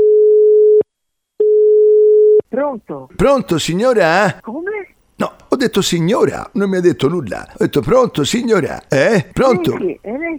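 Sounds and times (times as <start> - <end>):
telephone ringback tone while calling a municipal office: 0.0 - 0.8, 1.4 - 2.4
speech: 2.5 - 10.3.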